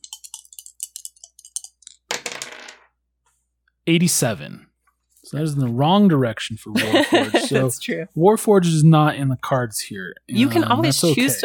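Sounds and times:
dice rolled in a tabletop role-playing game: 0.0 - 2.9
speech: 3.9 - 4.7, 5.3 - 11.4
laughter: 6.6 - 7.8, 10.4 - 11.4.

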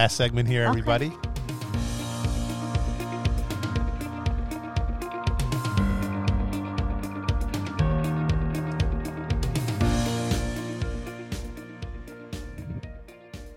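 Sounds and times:
speech: 0.0 - 1.3
upbeat instrumental music with a punchy beat: 0.0 - 13.5.

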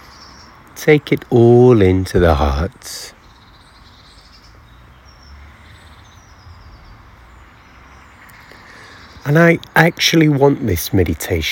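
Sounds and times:
bird singing: 0.0 - 11.5
steady outdoor hiss: 0.0 - 11.5
speech: 0.8 - 3.2, 9.3 - 11.5.

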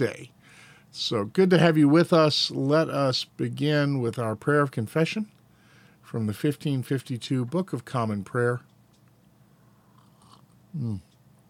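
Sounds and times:
speech: 0.0 - 5.4, 6.1 - 8.7, 10.8 - 11.1
sip and swallow of coffee: 9.9 - 10.6.

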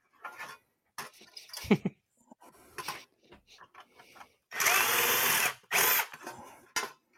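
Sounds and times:
power drill enlarging a drilled hole with a slightly bigger bit: 4.5 - 6.4.

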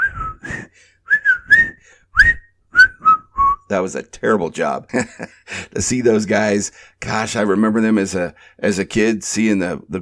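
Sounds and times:
person whistling a short bouncy tune: 0.0 - 3.7
speech: 3.7 - 10.0.

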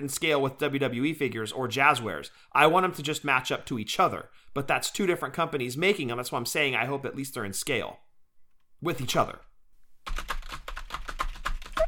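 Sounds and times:
speech: 0.0 - 8.0, 8.8 - 10.4
rapid forceful typing on a computer keyboard: 10.0 - 11.8.

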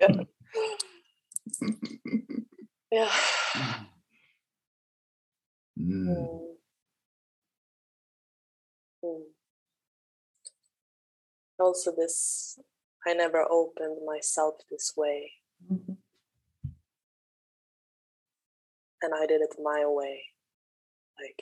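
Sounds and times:
soft vocal sounds: 0.0 - 4.0, 5.8 - 6.6
speech: 2.9 - 3.7, 11.6 - 16.0, 19.0 - 20.3, 21.2 - 21.4.

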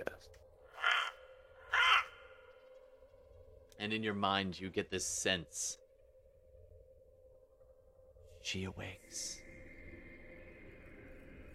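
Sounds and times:
crow calling at night in a forest: 0.6 - 2.8
speech: 3.8 - 5.8, 8.4 - 9.4.

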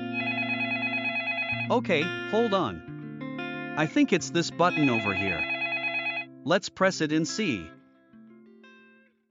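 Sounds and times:
studio telephone ringing with a buzzy electronic tone: 0.2 - 1.8, 4.6 - 6.3
speech: 1.7 - 2.9, 3.8 - 5.5, 6.4 - 7.8.

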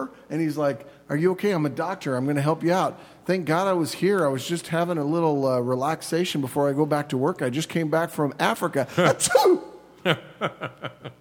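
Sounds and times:
speech: 0.0 - 11.0
laughter: 8.9 - 11.1
person faking a sneeze: 9.0 - 9.8.

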